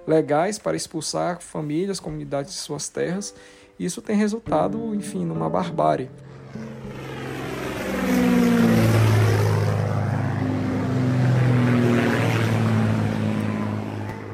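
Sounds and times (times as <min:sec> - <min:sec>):
speech: 0:00.1 - 0:06.7
low-flying propeller airplane droning overhead: 0:05.6 - 0:14.3.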